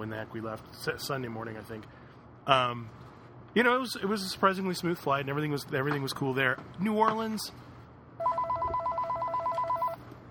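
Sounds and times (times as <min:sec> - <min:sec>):
speech: 0:00.0 - 0:03.0, 0:03.6 - 0:07.6
low hum: 0:00.0 - 0:10.2
telephone ringing for an incoming call: 0:08.2 - 0:10.0.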